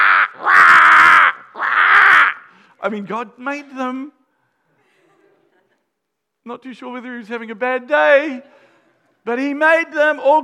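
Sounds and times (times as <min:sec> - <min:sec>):
crows cawing: 0:00.0 - 0:02.6
speech: 0:02.8 - 0:04.2, 0:06.4 - 0:08.6, 0:09.2 - 0:10.4.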